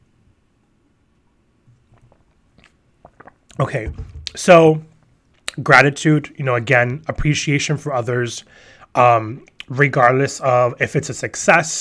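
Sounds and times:
low hum: 0.0 - 11.8
soft swallowing of water: 1.7 - 3.7
wet mouth clicks from sipping water: 1.9 - 3.6
speech: 3.6 - 4.9, 5.6 - 11.8.

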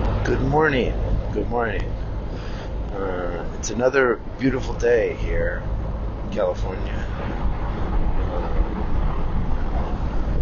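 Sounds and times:
road noise from inside a moving car: 0.0 - 10.4
speech: 0.3 - 2.0, 3.0 - 7.4.

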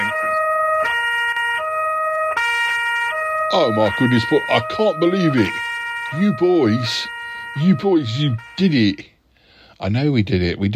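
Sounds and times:
emergency vehicle siren sound effect in a two-tone pattern: 0.0 - 9.1
speech: 3.5 - 9.1, 9.8 - 10.7.

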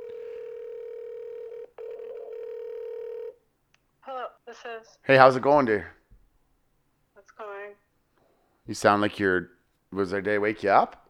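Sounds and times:
telephone line tone as a live phone call is placed: 0.0 - 3.4
speech: 4.5 - 6.0, 8.7 - 11.0.

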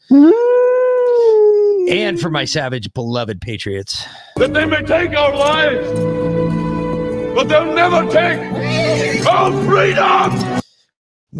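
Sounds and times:
speech: 0.1 - 0.4, 1.9 - 6.6, 7.4 - 10.6
person howling like a wolf: 0.1 - 2.2.

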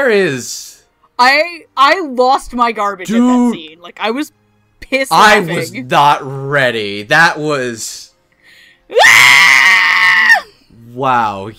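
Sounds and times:
speech: 0.0 - 8.1, 8.9 - 10.4, 11.0 - 11.5
screaming goat scream: 9.0 - 10.5.

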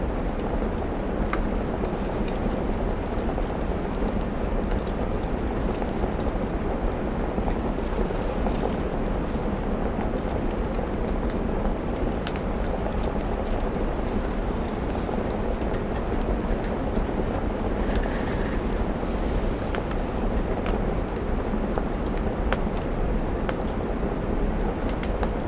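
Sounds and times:
soft autumn rain falling against a window: 0.0 - 25.4
small crackles and taps: 0.2 - 18.8, 19.7 - 25.4.

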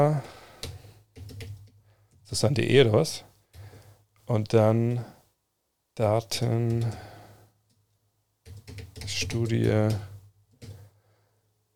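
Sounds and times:
speech: 0.0 - 0.4, 2.3 - 3.3, 4.3 - 5.2, 6.0 - 7.1, 9.1 - 10.1
typing on a computer keyboard: 0.2 - 2.2, 6.7 - 7.2, 8.4 - 10.9.

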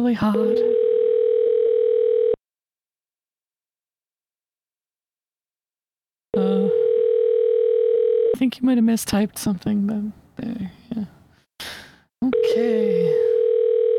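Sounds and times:
speech: 0.0 - 0.8, 8.4 - 11.2, 12.4 - 13.2
telephone dial tone while a call is being placed: 0.6 - 2.4, 6.8 - 8.4, 13.2 - 13.9.

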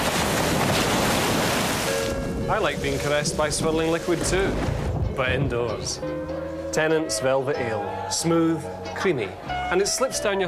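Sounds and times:
ocean waves crashing on shore: 0.0 - 5.0
speech: 2.5 - 10.4.

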